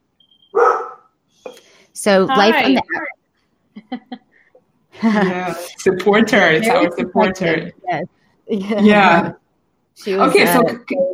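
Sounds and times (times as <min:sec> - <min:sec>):
dog barking: 0:00.5 - 0:01.1
speech: 0:02.0 - 0:03.2, 0:05.0 - 0:09.4, 0:10.0 - 0:11.1
faint high tone: 0:02.3 - 0:03.2.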